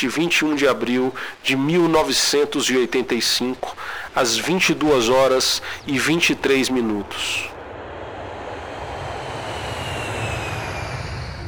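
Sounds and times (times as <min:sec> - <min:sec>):
speech: 0:00.0 - 0:07.5
faint high whine: 0:06.0 - 0:11.4
airplane engine roar arriving at air base: 0:07.0 - 0:11.4.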